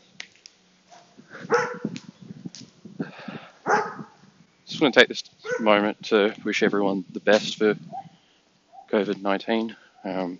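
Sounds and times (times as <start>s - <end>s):
dog barking on a walk: 0.9s - 1.9s, 3.6s - 4.1s, 5.4s - 5.7s
speech: 4.8s - 7.9s, 8.9s - 10.3s.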